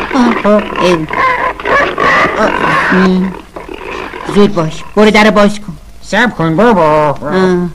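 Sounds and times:
pig squealing and grunting: 0:00.0 - 0:05.4
excited voices talking: 0:00.0 - 0:07.0
speech: 0:00.2 - 0:03.4, 0:04.3 - 0:07.7.

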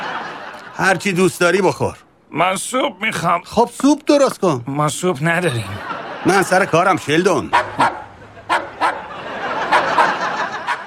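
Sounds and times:
laughter: 0:00.0 - 0:01.2, 0:05.4 - 0:10.8
speech: 0:00.8 - 0:08.0
dog barking in a laboratory: 0:07.5 - 0:10.8.

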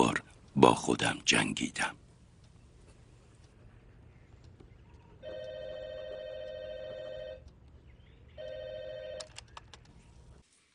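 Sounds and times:
speech: 0:00.0 - 0:02.0
faint hiss: 0:00.0 - 0:10.7
telephone ringing with a steady electronic trill: 0:05.2 - 0:07.5, 0:08.4 - 0:09.4.

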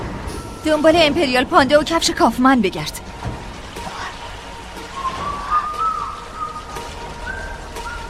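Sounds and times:
speech: 0:00.6 - 0:03.0
man whistling a melody: 0:04.9 - 0:08.0.

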